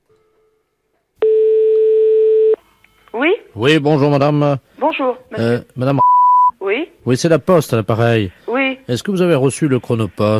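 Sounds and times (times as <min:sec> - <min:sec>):
telephone ringing tone on a prank call to a post office: 0:01.2 - 0:02.6
speech: 0:03.1 - 0:10.3.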